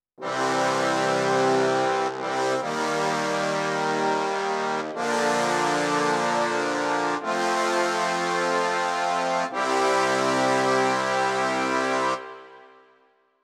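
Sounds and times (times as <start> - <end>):
trombone section sample on a synthesizer: 0.2 - 12.8.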